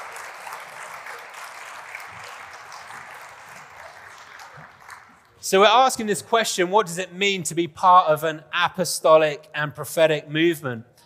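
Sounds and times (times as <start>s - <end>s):
crowd clapping: 0.0s - 5.4s
speech: 5.4s - 10.9s.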